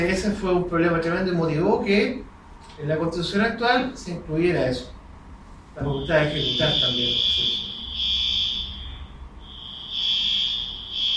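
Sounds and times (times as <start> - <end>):
speech: 0.0 - 5.0, 5.8 - 7.7
internal building alarm ringing with high-pitched electronic tone: 5.8 - 11.1.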